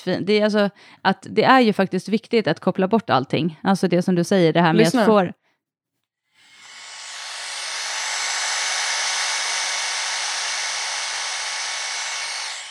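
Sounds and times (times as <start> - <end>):
speech: 0.0 - 5.4
hair dryer running: 6.4 - 12.6.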